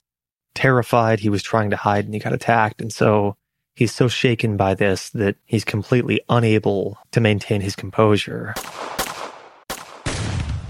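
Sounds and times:
speech: 0.6 - 9.0
gunshots: 8.6 - 10.6.

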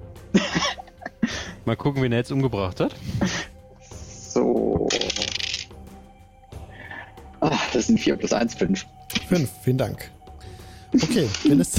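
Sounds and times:
laughter: 0.4 - 1.5
speech: 1.6 - 3.4, 4.4 - 4.8, 7.8 - 10.2, 10.9 - 11.7
dice rolled for damage in a tabletop role-playing game clattering: 4.9 - 5.7.

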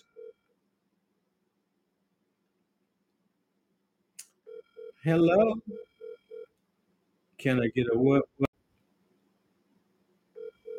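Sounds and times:
speech: 5.0 - 5.9, 7.4 - 8.4
electronic telephone beeps of an outgoing call: 5.6 - 6.5, 10.4 - 10.7.

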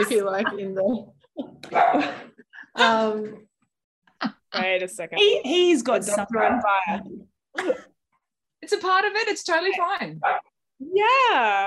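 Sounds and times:
speech: 0.0 - 3.5, 4.2 - 7.9, 8.6 - 11.6
pet dog barking: 1.7 - 2.2, 6.3 - 6.8, 10.2 - 10.5.

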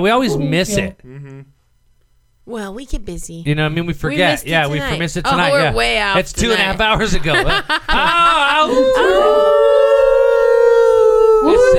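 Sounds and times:
speech: 0.0 - 1.5, 2.5 - 9.7
laughter: 6.6 - 10.2
person howling like a wolf at a window: 8.7 - 11.7.

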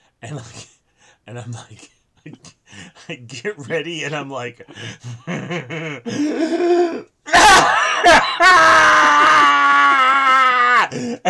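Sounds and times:
speech: 0.2 - 0.7, 1.3 - 2.5, 3.1 - 8.8
laughter: 5.1 - 6.1
man's loud strained primal scream: 6.5 - 11.1.

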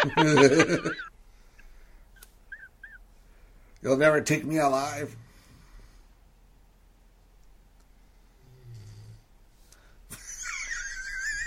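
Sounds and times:
laughter: 0.0 - 1.1, 10.1 - 11.4
speech: 0.0 - 1.1, 3.8 - 5.2
quiet hiss: 0.0 - 11.4
person snoring with whistling wheeze: 8.4 - 9.2.

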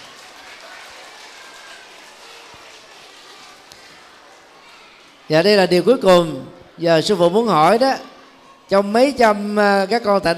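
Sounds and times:
large crowd applauding: 0.0 - 5.2
speech: 5.3 - 8.1, 8.7 - 10.3.

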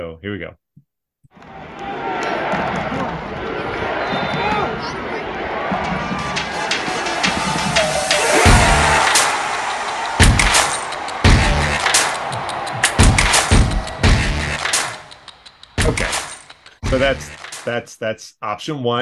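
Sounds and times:
speech: 0.1 - 0.6, 16.9 - 18.9
dense stadium crowd roar: 1.4 - 16.4
driving sports music bed: 5.7 - 17.7.

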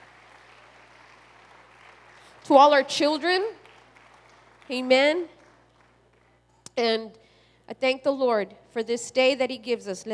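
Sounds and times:
audience applauding: 0.0 - 6.4
speech: 2.5 - 3.6, 4.7 - 5.4, 6.8 - 10.1.

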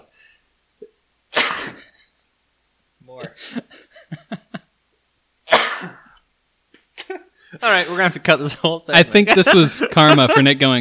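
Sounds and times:
sneeze after inhaling spicy dust: 1.3 - 1.8, 5.5 - 6.1
speech: 3.1 - 3.8, 7.6 - 10.7
laughter: 3.3 - 4.7, 7.0 - 10.7.

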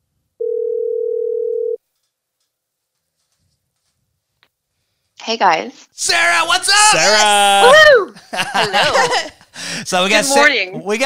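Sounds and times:
telephone call ringing tone: 0.4 - 1.8
speech: 5.3 - 11.0
laughter: 6.7 - 11.0.

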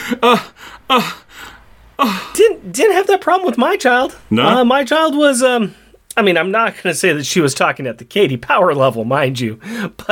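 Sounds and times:
person gasping: 0.0 - 2.4, 9.6 - 10.0
soft breathing: 0.0 - 2.4, 9.6 - 10.0
speech: 0.1 - 1.2, 2.0 - 10.1.

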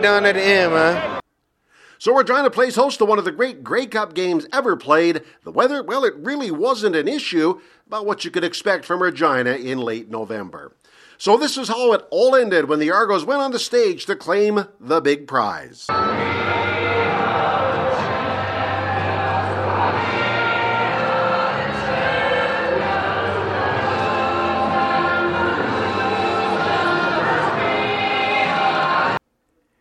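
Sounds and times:
large football championship crowd roaring and cheering in celebration: 0.0 - 1.2, 15.9 - 29.2
speech: 0.0 - 1.2, 2.0 - 16.6.

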